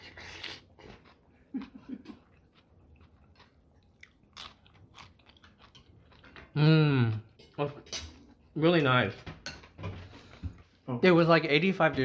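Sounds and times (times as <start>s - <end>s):
chewing: 0.0s - 7.7s
crunchy piece of food bitten while eating pozole with lime: 3.0s - 5.8s
speech: 6.6s - 6.8s, 8.6s - 9.3s, 10.9s - 12.0s.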